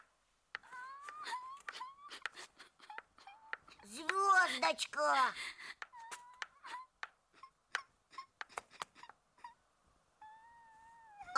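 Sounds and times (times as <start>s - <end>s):
person crying with soft wavering whimpers and tremulous sobs: 0.6s - 9.6s
speech: 3.9s - 5.6s.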